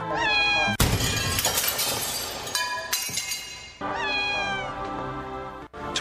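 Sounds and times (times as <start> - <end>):
cat meowing with drawn-out wailing calls: 0.0 - 0.8, 3.8 - 4.8
sudden sharp crash and clatter: 0.8 - 3.6.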